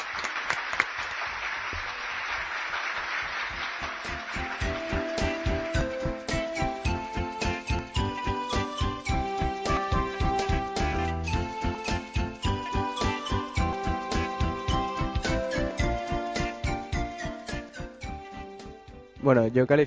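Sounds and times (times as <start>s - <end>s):
group applauding: 0.0s - 17.8s
rhythmic tinkling musical notes: 4.1s - 19.5s
speech: 19.2s - 19.8s.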